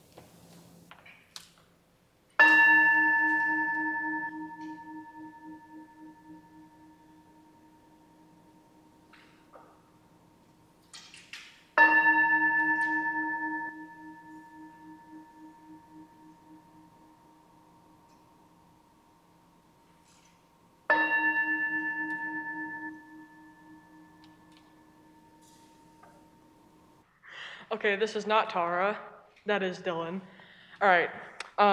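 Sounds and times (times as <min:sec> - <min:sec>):
sanctuary bell struck to call people to worship: 0:02.4 - 0:09.9, 0:11.8 - 0:27.0
speech: 0:27.8 - 0:31.7.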